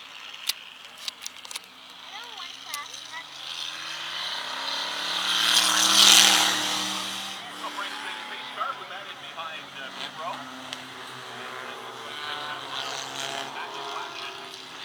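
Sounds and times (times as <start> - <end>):
V6 race car engine droning: 0.0 - 14.8
indistinct voices: 0.9 - 3.8, 5.4 - 14.8.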